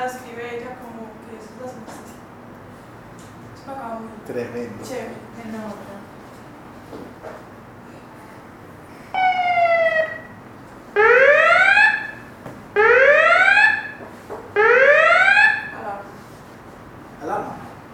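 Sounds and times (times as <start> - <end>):
speech: 3.7 - 6.0
emergency alarm siren wailing: 9.2 - 15.8.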